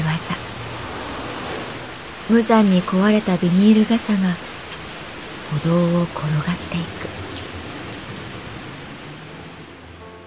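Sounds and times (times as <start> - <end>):
heavy rain pounding on a road surface: 0.0 - 10.2
speech: 2.3 - 4.5, 5.5 - 7.2.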